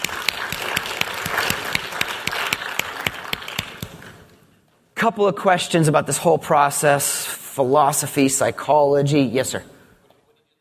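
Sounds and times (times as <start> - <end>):
crowd applauding: 0.0 - 4.2
sharper louder claps: 0.0 - 4.3
speech: 5.0 - 9.8.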